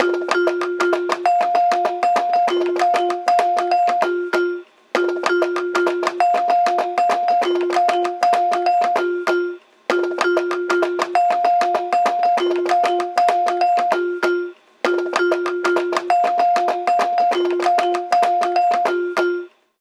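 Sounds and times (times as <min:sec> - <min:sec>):
phone ringtone: 0:00.0 - 0:19.5.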